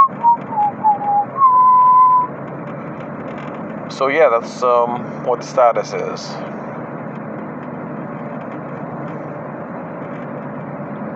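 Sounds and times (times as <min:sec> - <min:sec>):
car engine rumble heard from inside the cabin: 0:00.0 - 0:11.1
road noise heard from inside the car cabin: 0:00.0 - 0:11.1
speech: 0:04.0 - 0:06.6.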